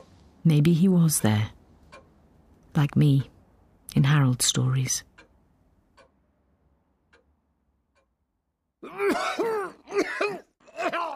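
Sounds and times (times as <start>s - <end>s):
faint sparse ticking: 0.0s - 8.6s
speech: 0.4s - 1.6s, 2.8s - 3.3s, 3.9s - 5.1s
man coughing with rough hacking bursts: 8.8s - 11.1s.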